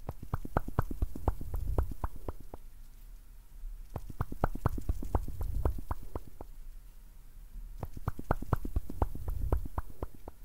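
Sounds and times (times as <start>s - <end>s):
quick tapping clicks: 0.0s - 2.7s, 3.9s - 6.6s, 7.8s - 10.4s.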